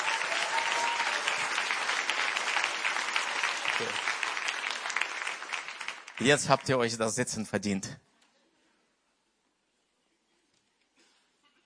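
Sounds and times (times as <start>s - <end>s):
audience applauding: 0.0s - 7.2s
speech: 3.8s - 4.1s, 6.2s - 8.1s.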